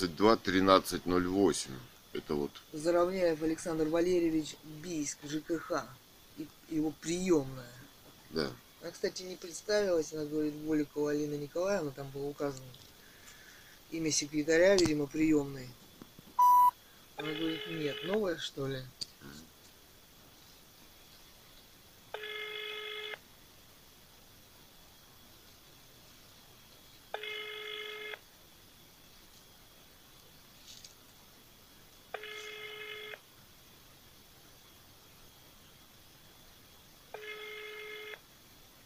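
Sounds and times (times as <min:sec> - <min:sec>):
speech: 0:00.0 - 0:12.8, 0:13.9 - 0:15.8, 0:17.2 - 0:19.4
faint telephone line hiss: 0:00.0 - 0:38.8
telephone ringback tone during a call to a housing and utilities office: 0:16.4 - 0:18.2, 0:22.2 - 0:23.2, 0:27.2 - 0:28.2, 0:32.2 - 0:33.2, 0:37.2 - 0:38.2.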